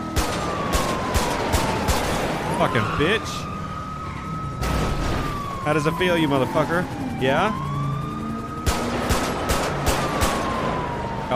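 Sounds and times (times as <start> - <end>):
video game gunshots fired at a car engine during a police pursuit: 0.0 - 2.5, 8.6 - 10.9
steady siren-like tone: 0.0 - 8.9, 9.5 - 11.3
speech: 2.6 - 3.5, 5.7 - 7.7.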